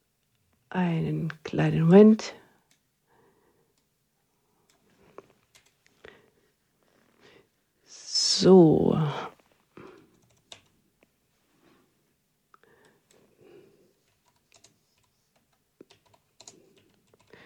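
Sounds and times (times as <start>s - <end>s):
speech: 0.7s - 2.4s, 8.4s - 9.3s
typing on a computer keyboard: 5.5s - 5.8s, 10.0s - 10.8s, 14.0s - 17.4s.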